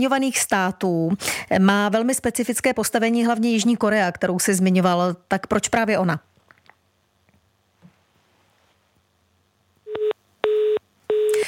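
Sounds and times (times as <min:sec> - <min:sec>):
speech: 0:00.0 - 0:06.3
telephone busy tone from a failed call: 0:09.9 - 0:11.4.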